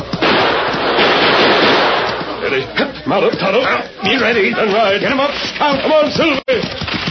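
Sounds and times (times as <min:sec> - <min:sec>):
gunshots fired at the ceiling of a tunnel: 0:00.0 - 0:02.5
speech: 0:02.6 - 0:07.0.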